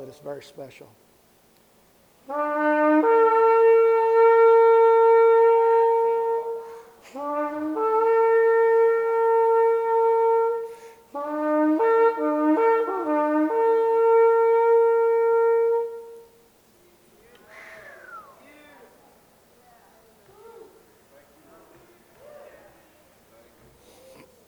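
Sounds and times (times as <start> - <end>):
speech: 0.0 - 1.1, 2.3 - 3.1
horn blasts: 2.2 - 16.5.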